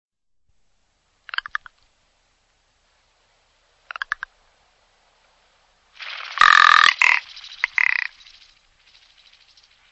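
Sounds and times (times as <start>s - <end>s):
bird giving harsh grating calls: 6.0s - 9.9s.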